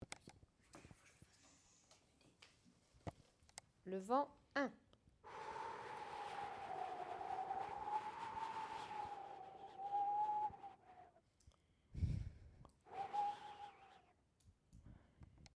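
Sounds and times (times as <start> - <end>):
wind: 5.3 - 11.2, 12.0 - 14.1.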